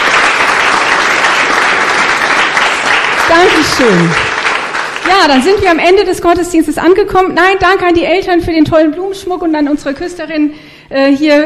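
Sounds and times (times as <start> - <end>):
audience applauding: 0.0 - 5.8
speech: 3.3 - 4.3, 5.0 - 11.4.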